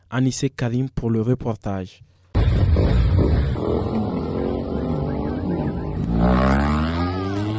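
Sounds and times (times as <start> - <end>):
speech: 0.1 - 2.2
large motorcycles of a bikers' club revving and passing in Agadez: 2.4 - 7.5.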